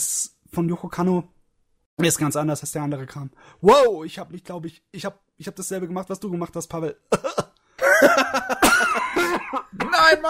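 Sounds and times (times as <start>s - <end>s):
speech: 0.6s - 1.4s, 2.0s - 7.4s, 9.5s - 10.2s
coughing fit with sharp harsh coughs and strained gasps: 7.2s - 10.2s
laughter: 7.2s - 10.2s.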